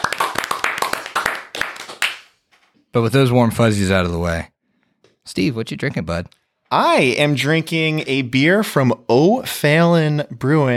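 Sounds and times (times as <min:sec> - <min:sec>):
small group clapping: 0:00.0 - 0:02.4
speech: 0:02.9 - 0:04.5, 0:05.3 - 0:10.7.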